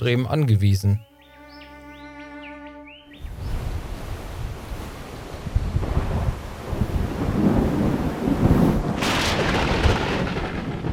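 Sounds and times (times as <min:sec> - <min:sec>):
speech: 0:00.0 - 0:01.1
strong rushing wind in a tropical rainforest storm: 0:03.2 - 0:10.9
deep rolling thunder in a tropical rainforest storm: 0:03.4 - 0:10.9
sharp crackling burst of thunder: 0:06.2 - 0:10.9.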